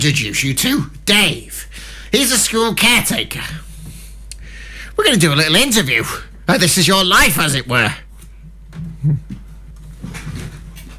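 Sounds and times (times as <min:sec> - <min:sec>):
speech: 0:00.0 - 0:03.7, 0:05.0 - 0:08.0, 0:08.7 - 0:09.3
low steady room hum: 0:00.0 - 0:10.9
chair squeaking and creaking: 0:08.7 - 0:10.9.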